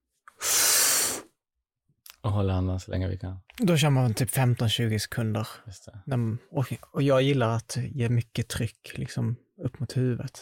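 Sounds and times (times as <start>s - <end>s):
forceful exhale during breathing exercise: 0.4s - 1.3s
speech: 2.2s - 10.3s.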